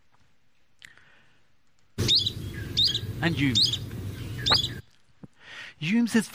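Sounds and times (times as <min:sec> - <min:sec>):
Yellow-browed Warbler thin upslurred whistled calls: 0:02.0 - 0:04.8
low rumbling background: 0:02.0 - 0:04.8
faint chirp: 0:02.0 - 0:04.9
speech: 0:03.2 - 0:03.8, 0:05.8 - 0:06.3.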